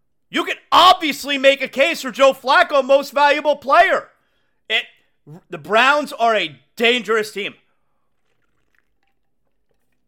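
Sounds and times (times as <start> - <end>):
speech: 0.8 - 4.1, 4.7 - 7.6
person sipping and swallowing from a bottled drink: 7.6 - 10.0.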